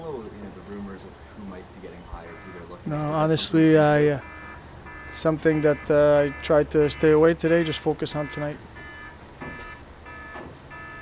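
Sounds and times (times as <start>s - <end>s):
speech: 2.2s - 4.3s, 5.1s - 8.7s
fire alarm buzzing: 2.3s - 11.0s.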